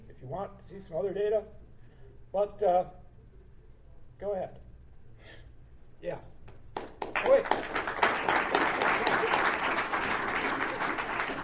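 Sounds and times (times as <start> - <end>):
speech: 0.2 - 1.6, 2.3 - 3.0, 4.2 - 4.6, 6.0 - 6.3, 7.2 - 8.0
audience applause: 6.8 - 11.4.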